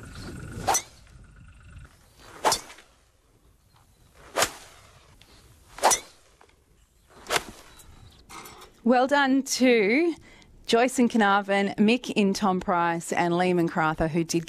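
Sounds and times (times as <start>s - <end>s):
golf club swings swishing: 0.0s - 1.1s, 2.2s - 3.0s, 4.1s - 7.9s
faint steady background: 0.0s - 14.4s
speech: 8.8s - 14.4s.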